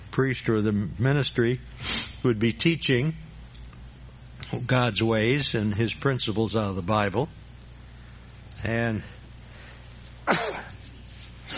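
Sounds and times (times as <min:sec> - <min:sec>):
speech: 0:00.2 - 0:03.3, 0:04.5 - 0:07.4, 0:08.6 - 0:09.2
man sneezing in a church: 0:10.2 - 0:10.8.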